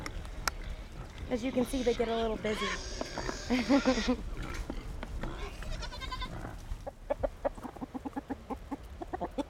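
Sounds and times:
busy farmyard clatter: 0:00.0 - 0:09.4
chickens clucking: 0:01.0 - 0:09.4
speech: 0:01.3 - 0:04.5
goat-like animal bleat: 0:01.7 - 0:04.2, 0:05.2 - 0:06.6.

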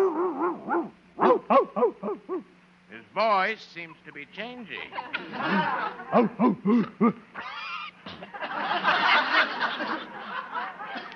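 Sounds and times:
dog in a kennel whining, yipping and barking: 0:00.0 - 0:02.5, 0:06.1 - 0:06.7
speech: 0:03.2 - 0:07.6
laughter: 0:04.8 - 0:11.1.

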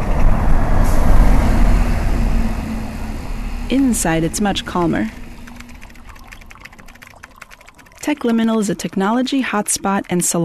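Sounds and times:
city bus heavy low engine roar passing on the street: 0:00.0 - 0:07.3
traffic noise: 0:00.0 - 0:07.8
speech: 0:03.7 - 0:05.2, 0:08.1 - 0:10.4.

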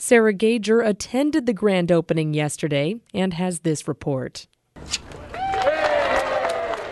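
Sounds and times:
speech: 0:00.0 - 0:05.2
crowd cheering at a ribbon-cutting ceremony: 0:05.1 - 0:06.9
scattered clapping at a ribbon-cutting ceremony: 0:05.2 - 0:06.9.

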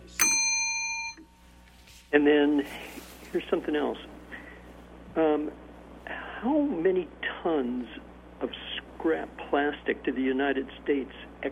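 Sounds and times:
bright bell ding for a correct quiz answer: 0:00.2 - 0:01.4
speech: 0:02.1 - 0:04.1, 0:05.2 - 0:05.6, 0:06.4 - 0:11.5.

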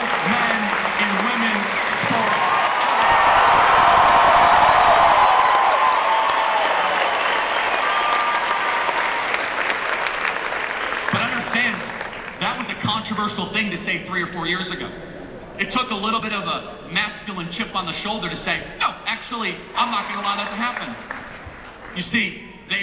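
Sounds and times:
large crowd at a speech applauding loudly: 0:00.0 - 0:12.6, 0:19.8 - 0:22.2
speech: 0:13.4 - 0:21.2, 0:22.0 - 0:22.8.

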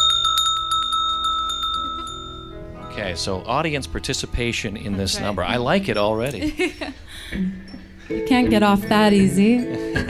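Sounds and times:
single handheld bell struck rapidly: 0:00.0 - 0:06.9
speech: 0:03.0 - 0:10.0
laughter: 0:04.4 - 0:07.4, 0:09.5 - 0:10.0.

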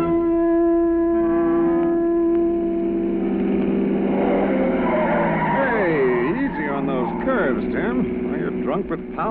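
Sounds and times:
car engine humming: 0:00.2 - 0:09.2
new low-pressure car tires squealing as the car swerves and corners: 0:03.0 - 0:09.1.

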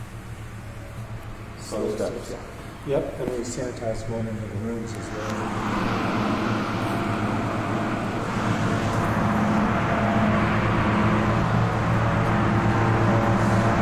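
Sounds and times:
air conditioning unit roar: 0:00.0 - 0:13.8
exhaust fans: 0:00.0 - 0:13.8
speech: 0:01.7 - 0:06.5
low hum: 0:04.9 - 0:13.8.

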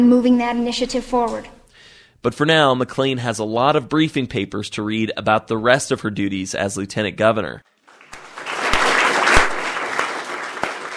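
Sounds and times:
speech: 0:00.0 - 0:01.6, 0:02.2 - 0:07.7
crowd of students cheering and clapping in school halls: 0:07.8 - 0:10.9.

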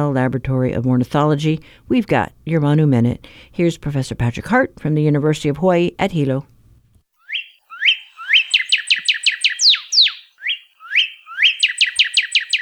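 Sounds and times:
speech: 0:00.0 - 0:06.5
northern cardinal singing clear whistled phrases and trills: 0:07.2 - 0:12.6.

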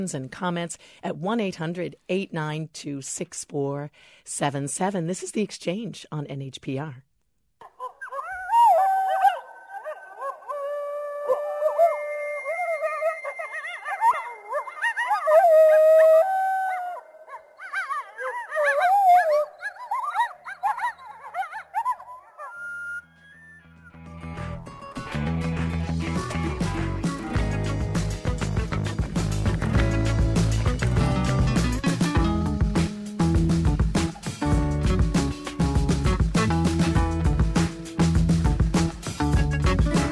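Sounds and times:
speech: 0:00.0 - 0:07.1
group of coyotes howling and yipping: 0:07.6 - 0:24.0
brief burst of music: 0:23.0 - 0:40.1.

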